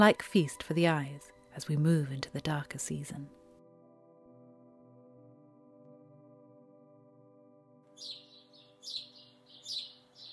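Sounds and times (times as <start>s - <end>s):
speech: 0.0s - 3.4s
group of house sparrows chirping: 8.0s - 10.3s.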